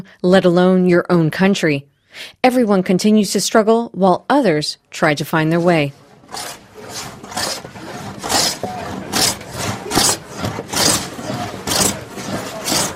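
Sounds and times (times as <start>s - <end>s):
speech: 0.0s - 7.5s
faint busy workshop hum: 5.4s - 12.9s
hand tools sawing and planing wooden planks: 5.9s - 12.9s.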